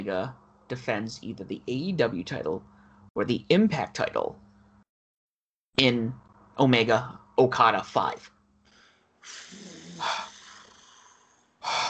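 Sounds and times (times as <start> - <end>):
speech: 0.0 - 4.4, 5.8 - 8.3, 9.2 - 10.3
heavy rasping mouth breathing: 8.7 - 11.8.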